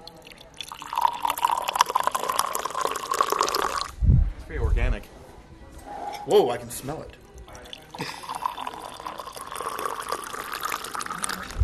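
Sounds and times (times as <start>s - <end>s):
tea pouring into a cup: 0.0s - 3.9s, 7.0s - 11.6s
speech: 6.3s - 7.2s, 8.0s - 8.2s.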